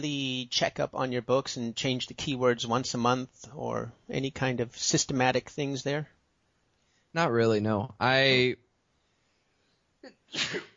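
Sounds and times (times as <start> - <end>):
speech: 0.0 - 6.2, 7.1 - 8.6, 10.0 - 10.7
sneeze: 10.1 - 10.7.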